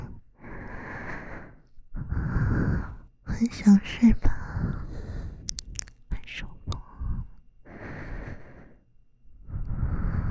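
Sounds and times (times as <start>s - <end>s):
person breathing slowly and softly: 0.0s - 3.1s, 4.4s - 5.5s, 6.8s - 10.2s
speech: 3.4s - 4.8s.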